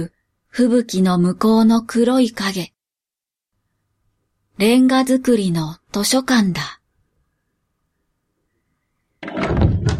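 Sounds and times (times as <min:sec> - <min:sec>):
speech: 0:00.0 - 0:02.7, 0:04.6 - 0:06.8
heavy door shoved open with a scraping rumble: 0:09.2 - 0:09.9.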